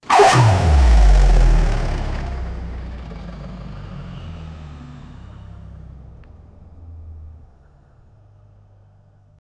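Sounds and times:
sailboat engine switching on and off: 0.0s - 6.3s.

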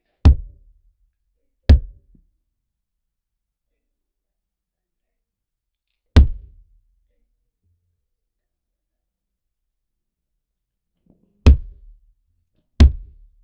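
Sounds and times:
martial arts punching and kicking impacts: 0.3s - 0.7s, 1.7s - 2.2s, 6.2s - 6.6s, 11.5s - 12.0s, 12.8s - 13.3s.

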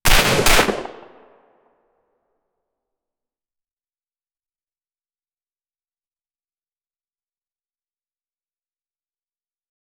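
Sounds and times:
suppressed 9mm gunshot: 0.1s - 1.3s.

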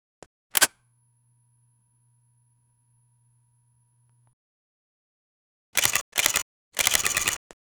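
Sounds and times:
fast digital camera shutter clicking: 0.6s - 0.8s, 5.8s - 7.4s.

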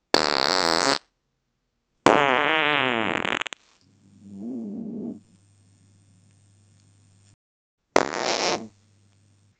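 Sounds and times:
farting: 0.1s - 1.1s, 2.1s - 5.4s, 8.0s - 8.8s.

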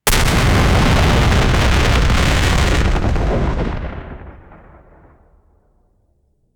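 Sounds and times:
heavy sci-fi artillery fire: 0.0s - 5.4s.

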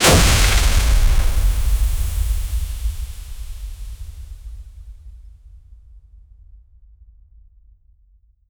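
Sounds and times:
magic frost beam impact: 0.0s - 4.5s.

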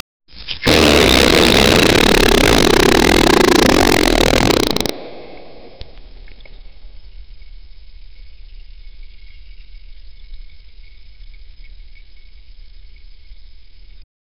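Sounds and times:
long loud fart: 0.7s - 5.0s.

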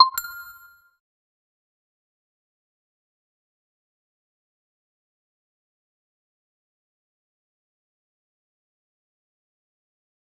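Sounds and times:
game UI confirm sound: 0.0s - 0.7s.

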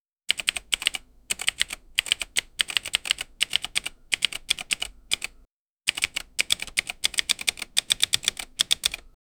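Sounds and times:
fast button typewriter typing: 0.3s - 9.1s.

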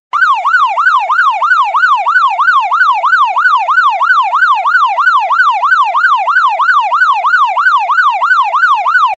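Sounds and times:
fast approaching police siren: 0.1s - 9.1s.

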